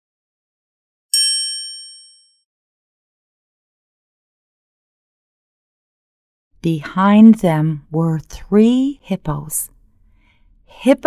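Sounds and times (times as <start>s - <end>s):
bright doorbell chime: 1.2s - 2.4s
speech: 6.6s - 9.7s, 10.7s - 11.0s.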